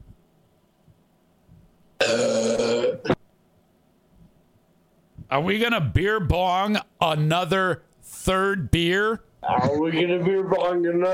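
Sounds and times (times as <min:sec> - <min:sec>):
loud burp: 0:02.0 - 0:03.2
speech: 0:05.3 - 0:11.1.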